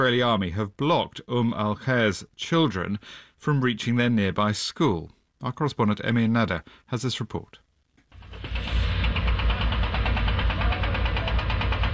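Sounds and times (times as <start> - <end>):
speech: 0.0 - 7.6
heavy machinery diesel engine drone with rapid knocking pulse at a building site: 8.1 - 11.9.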